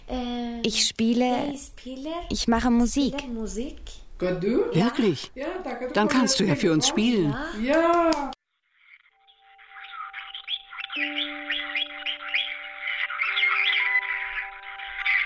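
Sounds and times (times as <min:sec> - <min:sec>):
speech: 0:00.1 - 0:08.4
parrots squawking and chirping in a bird shop: 0:08.7 - 0:15.2.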